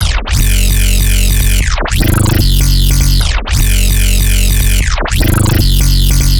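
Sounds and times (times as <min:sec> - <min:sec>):
dubstep bass loop in F sharp at 150 bpm: 0:00.0 - 0:06.3.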